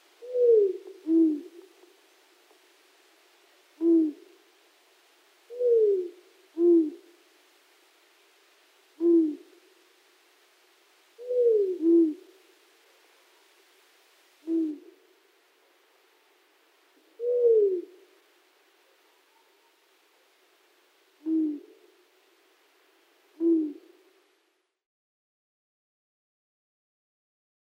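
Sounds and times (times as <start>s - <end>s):
Long-eared owl giving low short hoots: 0.2s - 1.7s, 3.8s - 4.3s, 5.5s - 7.1s, 9.0s - 9.5s, 11.2s - 12.3s, 14.4s - 15.0s, 17.0s - 18.0s, 21.2s - 21.8s, 23.3s - 24.0s.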